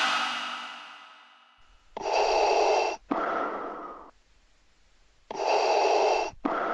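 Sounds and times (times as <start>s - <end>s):
person breathing behind someone testing a video game: 0.7s - 4.1s, 5.3s - 6.7s
sharp snorting gasps: 2.0s - 4.1s, 5.3s - 6.7s.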